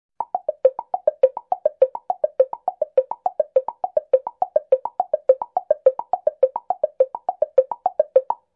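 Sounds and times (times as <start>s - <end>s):
woodblock descending arpeggio: 0.2s - 8.4s.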